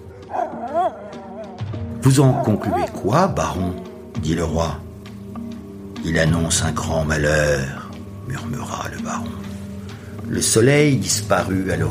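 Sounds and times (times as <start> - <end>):
pack of hunting dogs barking and yelping: 0.0 - 3.0
speech: 0.3 - 4.9, 6.0 - 9.4, 10.3 - 11.9.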